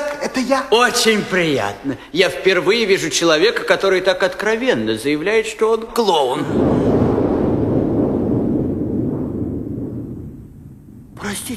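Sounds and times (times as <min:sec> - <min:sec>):
speech: 0:00.3 - 0:06.9, 0:11.3 - 0:11.5
deep rolling boom: 0:06.4 - 0:11.5.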